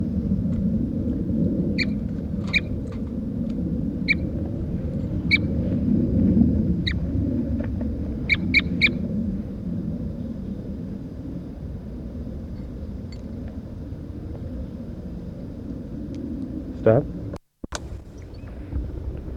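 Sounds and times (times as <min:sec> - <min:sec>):
constant low rumble of outdoor noise: 0:00.0 - 0:19.3
bird giving short sharp calls: 0:01.7 - 0:03.0, 0:04.0 - 0:04.4, 0:05.2 - 0:05.5, 0:08.2 - 0:09.0.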